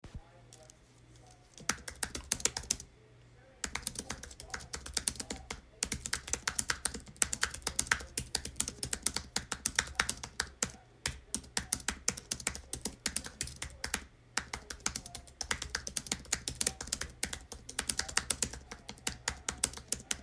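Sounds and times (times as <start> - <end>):
Apple keyboard typing: 0.6 - 2.9, 3.6 - 20.2.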